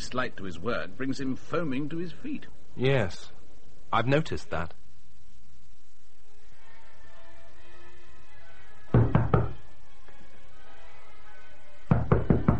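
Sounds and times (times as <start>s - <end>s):
speech: 0.1s - 4.8s
firm knocking on a door by an inspector: 8.9s - 9.6s, 11.9s - 12.5s.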